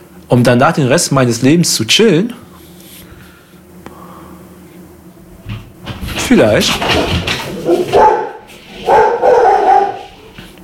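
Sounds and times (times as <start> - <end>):
speech: 0.3 - 2.5, 6.3 - 8.0
dog barking: 7.5 - 10.4.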